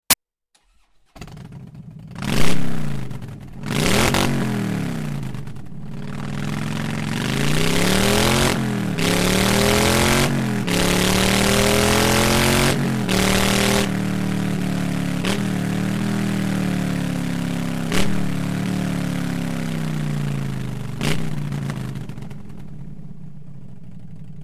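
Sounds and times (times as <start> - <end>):
Harley-Davidson Dyna motorcycle with open exhaust without dB killer: 1.1 - 24.4.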